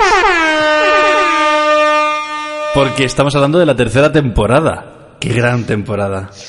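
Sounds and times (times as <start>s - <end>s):
air horns blaring: 0.0s - 3.6s
speech: 2.8s - 6.4s.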